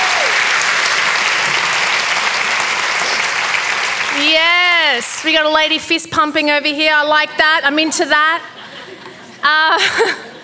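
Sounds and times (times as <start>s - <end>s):
large audience applauding in a packed theatre at a book launch: 0.0s - 5.8s
speech: 5.0s - 8.6s, 9.4s - 10.2s
laughter: 8.4s - 10.4s.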